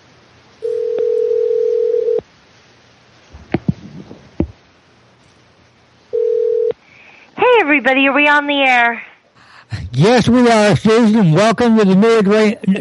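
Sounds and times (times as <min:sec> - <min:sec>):
telephone dial tone as a call is placed: 0:00.6 - 0:02.2, 0:06.2 - 0:06.7
speech: 0:07.8 - 0:09.1, 0:10.0 - 0:12.7.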